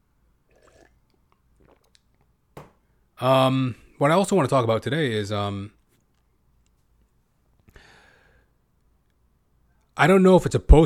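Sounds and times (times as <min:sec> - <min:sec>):
person sipping water: 0:00.4 - 0:02.4
gulp: 0:00.5 - 0:02.3
speech: 0:03.2 - 0:05.8, 0:10.0 - 0:10.8.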